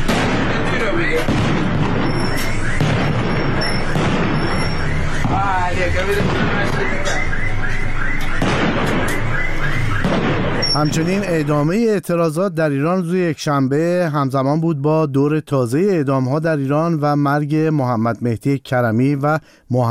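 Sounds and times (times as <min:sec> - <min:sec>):
gunfire: 0:00.0 - 0:11.4
booming explosions: 0:00.0 - 0:11.7
speech: 0:10.8 - 0:19.9.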